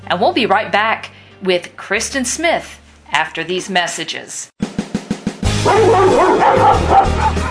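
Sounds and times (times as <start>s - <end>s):
speech: 0.1s - 4.6s, 5.6s - 7.4s
single dog barking: 5.6s - 7.4s.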